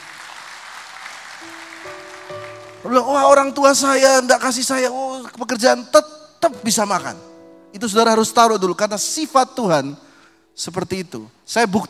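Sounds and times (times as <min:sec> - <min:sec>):
audience applause: 0:00.0 - 0:03.6
sustained keyboard or organ chord: 0:01.4 - 0:04.5, 0:06.4 - 0:11.5
speech: 0:02.8 - 0:11.8.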